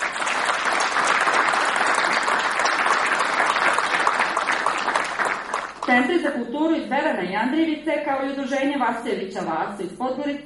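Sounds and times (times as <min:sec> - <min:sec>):
audience applause for an award-winning journalist and writer: 0:00.0 - 0:05.9
speech: 0:05.9 - 0:10.4.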